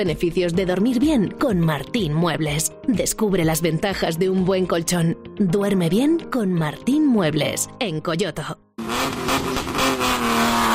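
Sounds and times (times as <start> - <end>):
speech: 0.0 - 8.6
rally car engine revving on city streets: 8.8 - 10.7.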